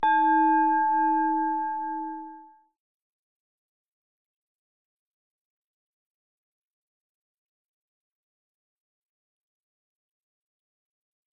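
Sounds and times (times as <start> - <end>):
bells for silent meditation: 0.0 - 2.6.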